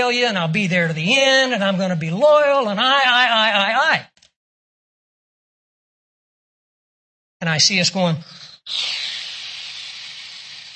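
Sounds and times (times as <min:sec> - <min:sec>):
speech: 0:00.0 - 0:04.1, 0:07.4 - 0:09.1
voice imitating a deflating balloon with a hiss: 0:08.2 - 0:10.7.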